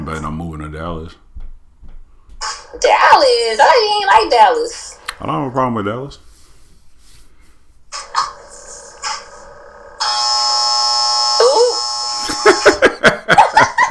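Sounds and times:
speech: 0:00.1 - 0:01.2, 0:02.8 - 0:06.3
clothes dryer end-of-cycle buzzer: 0:08.0 - 0:12.9
laughter: 0:12.2 - 0:13.8.

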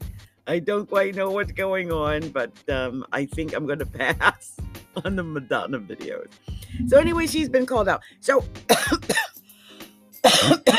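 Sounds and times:
speech: 0:00.5 - 0:09.2
hard raspy forceful coughs: 0:08.7 - 0:09.4, 0:10.2 - 0:10.7.

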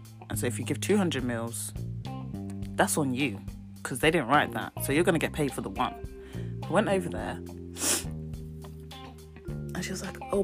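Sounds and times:
speech: 0:00.3 - 0:01.9, 0:02.8 - 0:06.1, 0:06.7 - 0:07.9, 0:09.9 - 0:10.4
quick nasal sniff: 0:07.7 - 0:08.2.

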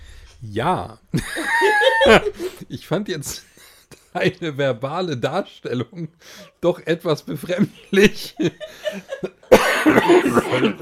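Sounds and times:
speech: 0:00.4 - 0:03.5, 0:04.1 - 0:10.7
laughter: 0:01.2 - 0:02.8, 0:07.4 - 0:10.7
loud harsh cough: 0:09.5 - 0:10.7.

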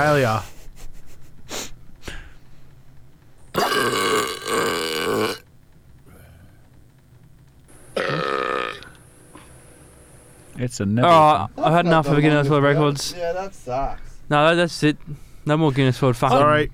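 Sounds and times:
speech: 0:00.0 - 0:00.5, 0:10.6 - 0:16.7
extremely loud drawn-out human burps: 0:03.6 - 0:05.4, 0:08.0 - 0:09.0.

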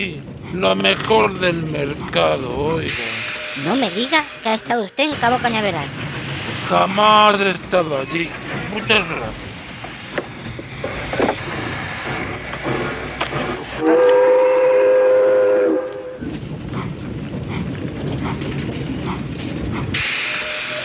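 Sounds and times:
speech: 0:00.0 - 0:06.0, 0:06.7 - 0:09.6
train rolling along: 0:00.0 - 0:20.8
train whistle blowing: 0:13.7 - 0:16.3, 0:20.0 - 0:20.8.

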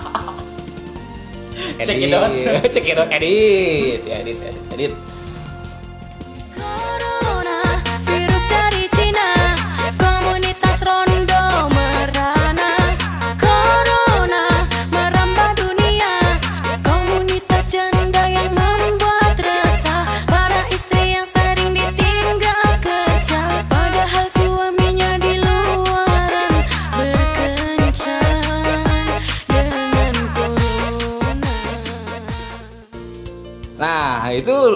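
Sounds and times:
laughter: 0:00.0 - 0:00.6
upbeat novelty pop song about the coronavirus with synth backing: 0:00.0 - 0:34.7
speech: 0:01.6 - 0:05.1.

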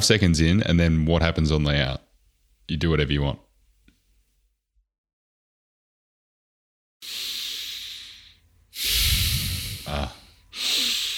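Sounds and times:
speech: 0:00.0 - 0:02.0, 0:02.7 - 0:03.4
exaggerated breathing blown straight into a microphone: 0:07.0 - 0:11.1.

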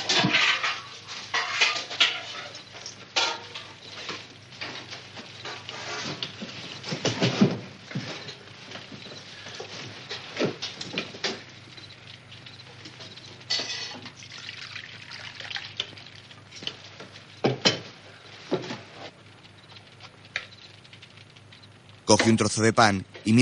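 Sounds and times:
tableware clinking and clattering as coffee and food are served: 0:00.0 - 0:14.8
speech: 0:22.1 - 0:23.4.

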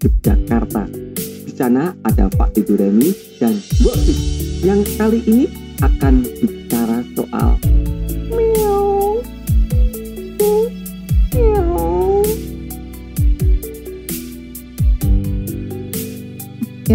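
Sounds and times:
speech: 0:00.0 - 0:07.7
rhythmic music with steady percussive beats: 0:00.0 - 0:16.9
cat meowing at a small food stall: 0:08.3 - 0:09.3, 0:10.4 - 0:10.7, 0:11.3 - 0:12.4.

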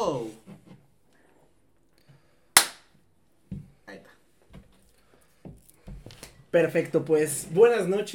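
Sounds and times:
single hand clap for recording sync: 0:02.6 - 0:02.9
speech: 0:06.5 - 0:08.1.

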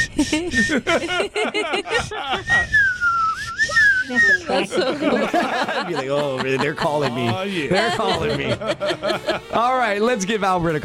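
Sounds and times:
person whistling: 0:00.0 - 0:01.1, 0:02.0 - 0:04.9
people laughing: 0:00.0 - 0:10.0
speech: 0:00.2 - 0:02.9, 0:03.6 - 0:10.8.

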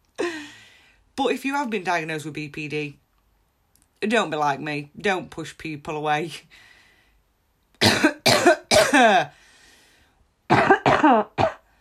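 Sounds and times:
person coughing harshly: 0:00.2 - 0:00.5, 0:07.8 - 0:09.3, 0:10.5 - 0:11.7
speech: 0:01.2 - 0:03.0, 0:04.0 - 0:06.7, 0:08.9 - 0:09.4, 0:10.5 - 0:11.4.

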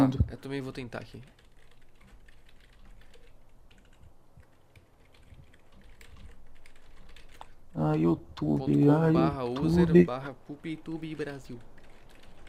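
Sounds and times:
speech: 0:00.1 - 0:01.4, 0:07.8 - 0:11.7
typing on a computer keyboard: 0:01.2 - 0:07.6, 0:11.4 - 0:12.4.

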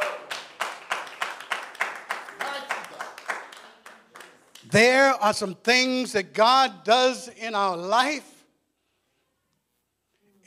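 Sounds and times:
audience clapping hands: 0:00.0 - 0:04.9
speech: 0:04.7 - 0:08.3.

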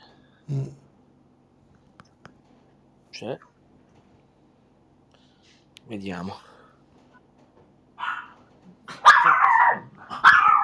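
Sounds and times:
speech: 0:00.5 - 0:00.8, 0:03.2 - 0:03.5, 0:05.9 - 0:06.5
dog barking and growling: 0:08.0 - 0:10.6.

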